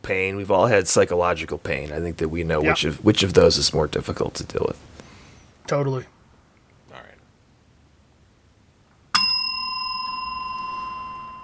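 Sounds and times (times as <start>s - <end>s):
speech: 0.1s - 5.0s, 5.7s - 6.2s
bicycle bell ringing: 9.2s - 11.4s.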